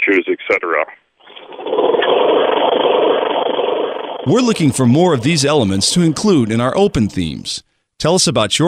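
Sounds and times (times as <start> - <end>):
speech: 0.1 - 1.0, 4.2 - 8.6
lawnmower engine in Michigan starting and running: 1.3 - 7.4.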